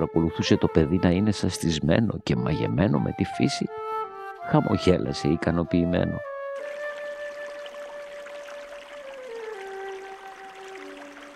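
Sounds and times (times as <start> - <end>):
speech: 0.0 - 3.9, 4.5 - 6.3
stream flowing with a soft rushing hiss: 6.6 - 11.3.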